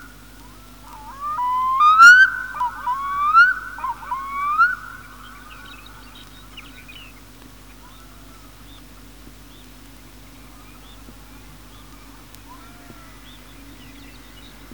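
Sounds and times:
black-throated loon song: 0:00.9 - 0:06.5.

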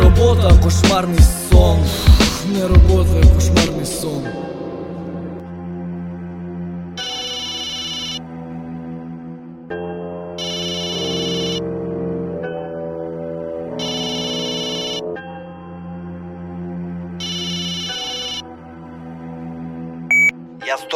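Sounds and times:
speech: 0:00.3 - 0:04.6
telephone ringing: 0:07.0 - 0:08.2, 0:10.4 - 0:11.7, 0:13.8 - 0:15.1, 0:17.2 - 0:18.4.

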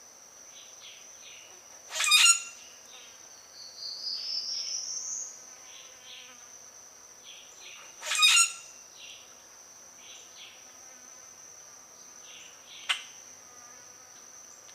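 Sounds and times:
steady shrill insect tone: 0:00.5 - 0:14.6
common grackle Quiscalus quiscula scratchy calls: 0:01.9 - 0:02.6, 0:08.0 - 0:08.7.

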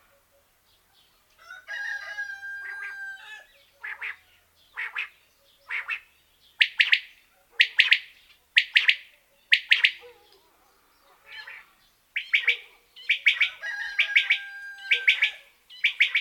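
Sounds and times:
common quail giving two- and three-note phrases: 0:02.4 - 0:10.3, 0:11.1 - 0:16.1.

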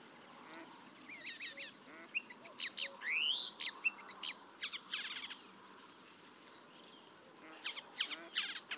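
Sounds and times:
paddyfield warbler Acrocephalus agricola song: 0:01.0 - 0:05.6, 0:06.4 - 0:08.7.

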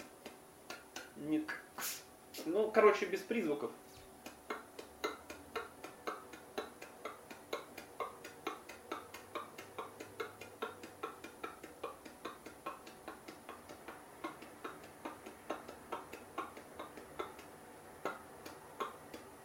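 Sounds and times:
dry explosive T and K consonant clicks made with the mouth: 0:00.0 - 0:02.5, 0:04.2 - 0:19.4
speech: 0:01.2 - 0:03.9.

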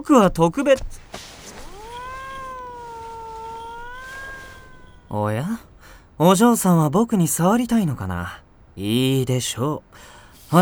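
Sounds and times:
speech: 0:00.0 - 0:01.2, 0:05.1 - 0:10.6
cat meowing: 0:01.0 - 0:05.8.

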